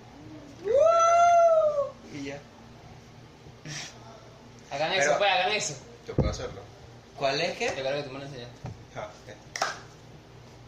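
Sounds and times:
small dog howling like a wolf: 0.6 - 2.0
speech: 5.2 - 9.8.

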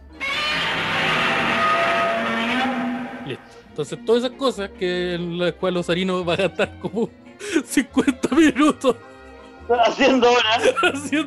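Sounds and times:
giant monster roar sound effect: 0.1 - 3.4
speech: 3.8 - 9.1, 9.7 - 11.2
laughter: 6.3 - 8.8, 9.7 - 11.2.

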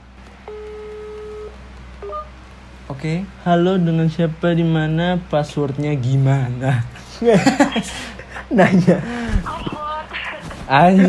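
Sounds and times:
low hum: 0.0 - 11.0
telephone dialing tones from a call being placed: 0.4 - 2.3
speech: 2.1 - 9.2, 10.7 - 11.0
laughter: 7.1 - 9.8, 10.8 - 11.0.

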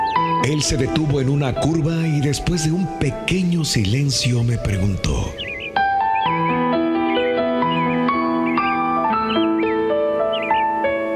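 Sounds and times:
bird chirps: 0.0 - 0.8, 4.4 - 11.1
speech: 0.4 - 5.4.

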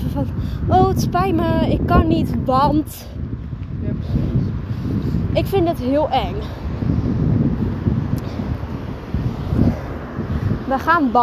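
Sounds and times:
speech: 0.2 - 3.2, 5.0 - 6.7, 10.7 - 11.2
cars driving past: 4.0 - 11.2.

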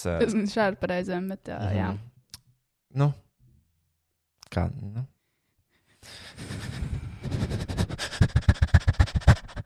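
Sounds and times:
speech: 0.0 - 2.1, 2.9 - 3.2, 4.5 - 5.1
person imitating a panting dog: 6.4 - 9.6.

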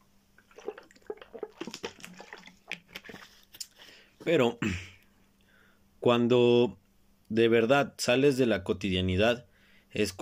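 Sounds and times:
person drinking water with sips and swallows: 0.4 - 4.1
speech: 4.2 - 4.9, 6.0 - 10.1.

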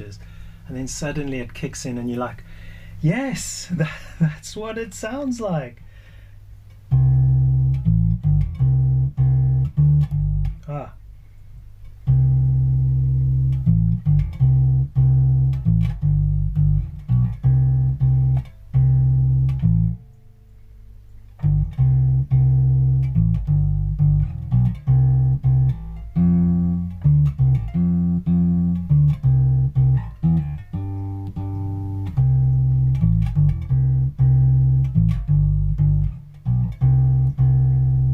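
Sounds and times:
speech: 0.0 - 5.8
solo guitar playing a rock tune: 6.9 - 10.7, 12.0 - 20.1, 21.4 - 38.1.

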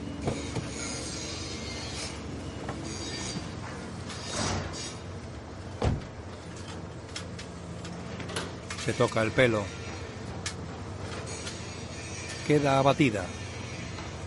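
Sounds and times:
speech: 0.3 - 0.7, 8.9 - 9.8, 12.5 - 13.4
car door unlatching and opening in a parking lot: 5.8 - 6.2.

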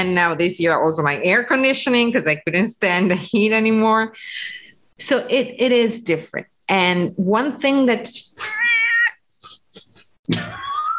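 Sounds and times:
speech: 0.0 - 8.7, 10.3 - 10.6
pet cat meowing: 8.4 - 9.2, 10.4 - 10.9.

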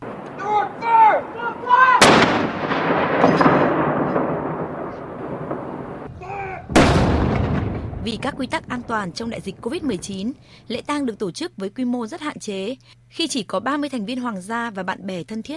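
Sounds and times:
cannon shots from a gun salute for a royal funeral in England: 0.0 - 10.2
speech: 8.1 - 15.5.

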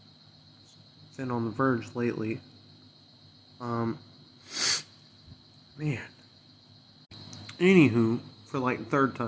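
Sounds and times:
speech: 1.2 - 2.5, 3.6 - 4.6, 5.8 - 6.2, 7.6 - 9.2
person blowing nose: 4.4 - 4.9.

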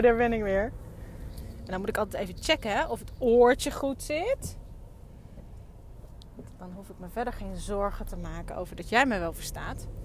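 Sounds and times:
speech: 0.0 - 0.8, 1.7 - 4.6, 6.6 - 10.0
quiet steady low rumble inside a parked car: 0.0 - 10.0
faint soft clicks: 5.3 - 6.6.

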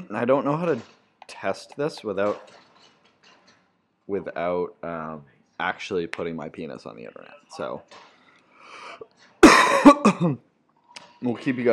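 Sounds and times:
speech: 0.1 - 2.6, 4.1 - 8.1, 9.0 - 10.5, 11.2 - 11.7
hacking human cough: 9.4 - 10.4.

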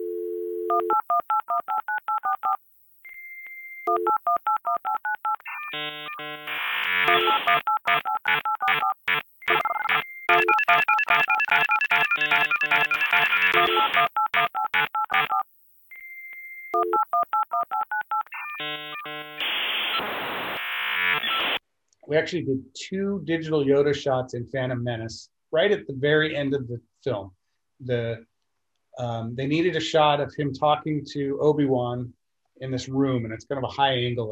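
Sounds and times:
brief low dial tone: 0.0 - 15.4, 16.0 - 19.4
dial-up modem connecting: 3.8 - 15.4, 16.7 - 21.6
speech: 5.7 - 8.9, 22.1 - 28.3, 29.0 - 34.3.

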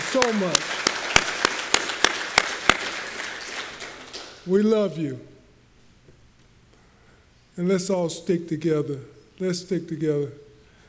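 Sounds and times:
audience clapping: 0.0 - 4.5
speech: 0.1 - 0.8, 4.5 - 5.3, 7.6 - 10.4.

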